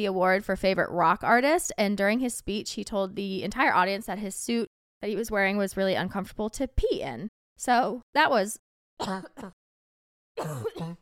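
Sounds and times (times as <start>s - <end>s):
speech: 0.0s - 9.6s, 10.4s - 11.0s
person coughing into hand: 9.0s - 9.6s, 10.4s - 11.0s.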